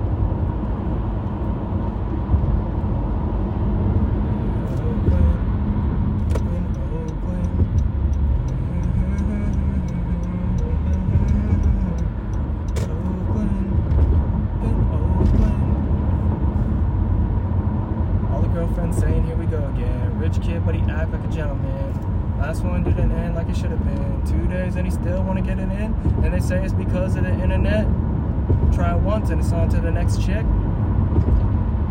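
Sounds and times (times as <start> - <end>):
continuous low rumble of vehicles: 0.0 - 31.8
scattered light ticking and clicking sounds: 6.2 - 13.5
speech: 29.3 - 30.6.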